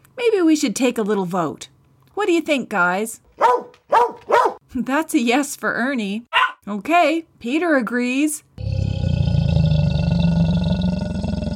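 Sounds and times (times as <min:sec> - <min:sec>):
speech: 0:00.2 - 0:03.6, 0:04.7 - 0:08.5
alligator roar: 0:08.6 - 0:11.5.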